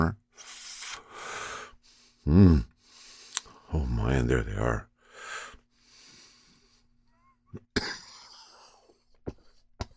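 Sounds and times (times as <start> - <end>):
speech: 2.3 - 2.7, 3.7 - 4.9
raspy throaty coughs after smoking a joint: 7.5 - 8.6.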